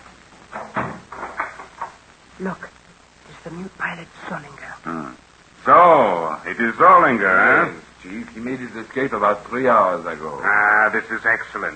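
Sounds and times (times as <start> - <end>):
wooden door swinging shut: 0.5 - 1.8
speech: 2.4 - 2.8, 3.4 - 11.7.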